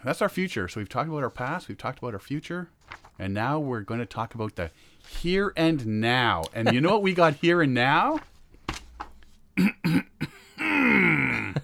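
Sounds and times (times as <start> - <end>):
speech: 0.0 - 8.3
person clearing throat with rasping hum: 9.6 - 11.6.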